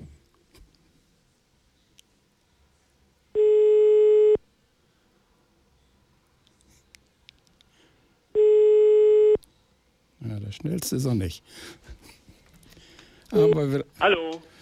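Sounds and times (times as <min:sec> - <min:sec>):
telephone ringback tone beeps: 0:03.4 - 0:04.4, 0:08.4 - 0:09.4
speech: 0:10.5 - 0:12.0, 0:13.3 - 0:14.5.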